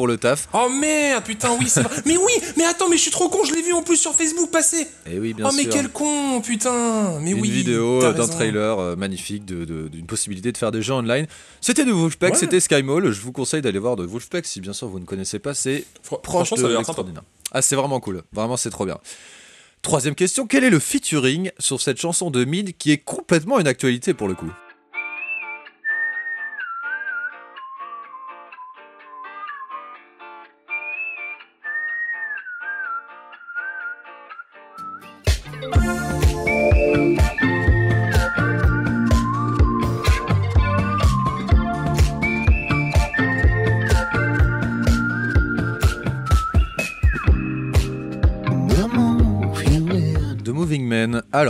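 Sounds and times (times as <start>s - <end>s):
speech: 0.0s - 24.6s
laughter: 1.3s - 2.6s, 12.3s - 12.6s
whistled melody: 24.9s - 49.7s
full band with drums and bass: 35.2s - 50.5s.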